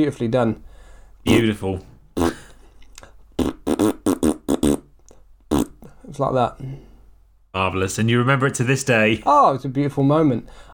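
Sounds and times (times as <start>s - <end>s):
speech: 0.0s - 2.4s, 6.2s - 6.9s, 7.6s - 10.7s
person imitating a fart with their mouth: 2.2s - 2.6s, 3.4s - 5.9s.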